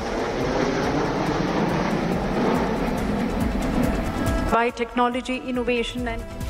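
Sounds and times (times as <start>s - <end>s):
aerobatic jet aircraft roaring overhead: 0.0s - 5.2s
speech: 4.5s - 6.4s.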